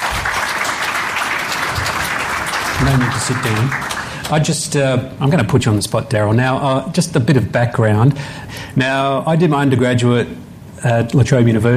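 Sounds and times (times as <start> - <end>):
audience applause: 0.0 - 4.5
speech: 2.8 - 11.7.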